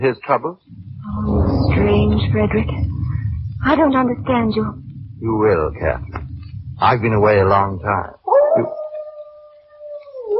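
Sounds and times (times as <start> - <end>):
speech: 0.0 - 2.9, 3.6 - 6.2, 6.8 - 8.8
dog howling: 6.8 - 10.3.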